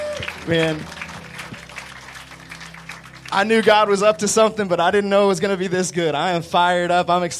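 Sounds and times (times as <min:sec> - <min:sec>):
audience applause at an evening gathering: 0:00.0 - 0:04.2
speech: 0:00.2 - 0:01.0, 0:03.3 - 0:07.3.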